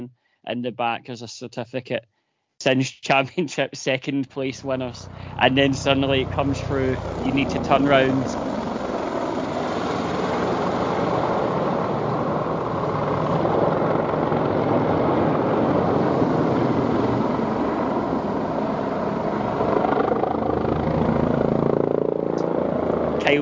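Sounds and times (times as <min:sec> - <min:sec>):
speech: 0:00.0 - 0:08.5
helicopter rotor blades thudding: 0:04.7 - 0:23.4.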